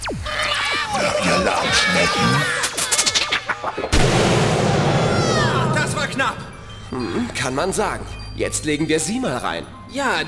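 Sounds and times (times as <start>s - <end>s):
laughter: 0.1s - 10.2s
gunfire sound effect in an audio drama: 3.9s - 7.5s
speech: 6.9s - 10.2s.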